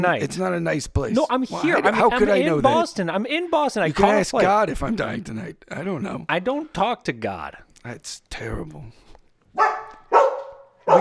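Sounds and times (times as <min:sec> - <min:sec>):
speech: 0:00.0 - 0:09.7
laughter: 0:01.5 - 0:02.9, 0:04.0 - 0:05.4
dog barking: 0:09.6 - 0:10.9.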